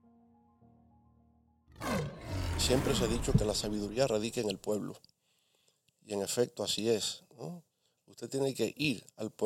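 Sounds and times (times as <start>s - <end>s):
lion roaring: 1.7s - 4.4s
speech: 2.6s - 5.1s, 6.1s - 9.4s.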